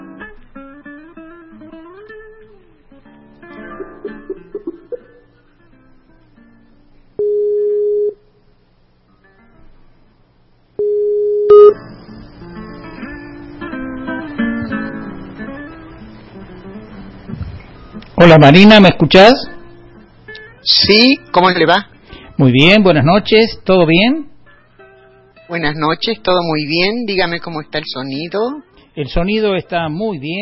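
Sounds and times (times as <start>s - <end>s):
electronic call tones from a video call being placed: 7.2s - 8.2s, 10.8s - 11.8s
speech: 18.2s - 19.5s, 20.9s - 24.3s, 25.5s - 30.4s.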